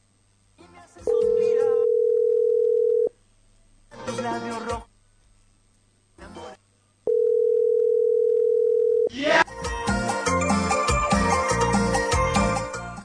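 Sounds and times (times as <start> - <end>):
music: 0.6 - 1.8, 3.9 - 4.9, 6.2 - 6.6, 9.1 - 13.0
telephone ringback tone on an unanswered call: 1.1 - 3.1, 7.1 - 9.1.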